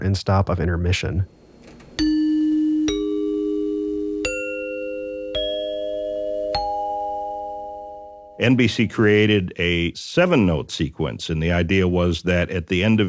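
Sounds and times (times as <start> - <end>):
speech: 0.0 - 1.4, 8.4 - 13.0
chimes ringing: 2.0 - 8.4.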